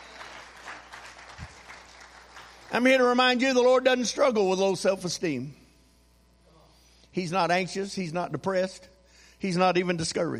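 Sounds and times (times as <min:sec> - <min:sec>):
audience clapping hands: 0:00.0 - 0:03.1
speech: 0:02.7 - 0:05.6, 0:07.2 - 0:10.3.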